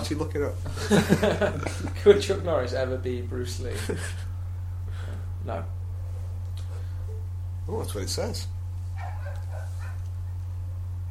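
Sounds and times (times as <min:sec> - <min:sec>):
steady low electrical hum: 0:00.0 - 0:11.1
speech: 0:00.1 - 0:04.3, 0:05.4 - 0:05.8, 0:07.7 - 0:08.6
laughter: 0:00.7 - 0:02.2, 0:03.6 - 0:04.4
dog yelping and whimpering outside: 0:09.0 - 0:10.0.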